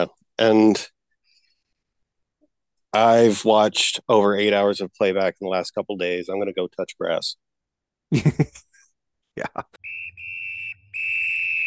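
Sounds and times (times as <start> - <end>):
speech: 0.0 - 0.9, 2.9 - 7.4, 8.1 - 8.7, 9.4 - 9.8
referee's whistle blasts: 9.8 - 11.6.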